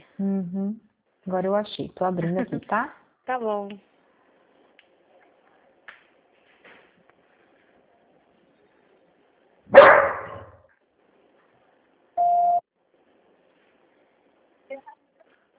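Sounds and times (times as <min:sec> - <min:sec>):
speech: 0:00.2 - 0:03.9
phone busy tone beep after a dropped call: 0:12.2 - 0:12.6.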